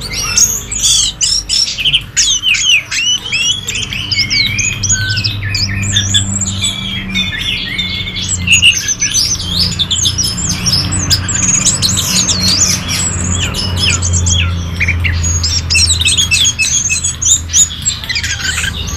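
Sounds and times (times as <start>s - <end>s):
orange-headed thrush singing: 0.0s - 18.9s.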